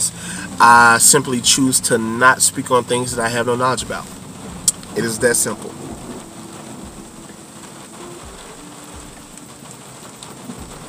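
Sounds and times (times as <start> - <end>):
steady rain hissing: 0.0 - 10.8
speech: 0.6 - 4.2, 5.0 - 6.0
distant thunder rumbling: 3.2 - 10.8.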